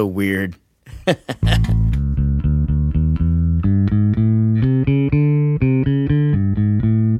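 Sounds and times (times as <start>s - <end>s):
speech: 0.0s - 2.0s
laughter: 0.9s - 2.0s
electric bass through an effect like a keyboard bass: 1.4s - 7.1s.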